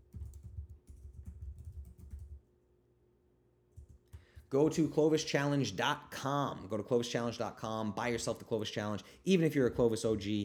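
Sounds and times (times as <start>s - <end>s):
soft typing on a computer keyboard: 0.0s - 2.4s
speech: 4.5s - 10.4s.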